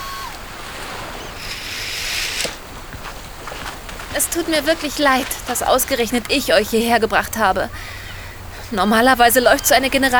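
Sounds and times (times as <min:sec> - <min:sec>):
hair dryer blowing: 0:00.0 - 0:05.6
speech: 0:04.2 - 0:08.0, 0:08.7 - 0:10.1.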